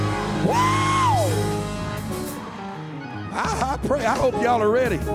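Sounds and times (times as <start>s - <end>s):
church audience shouting hallelujah: 0.1s - 1.7s
rising and falling yells: 0.4s - 1.5s
speech: 3.9s - 5.1s.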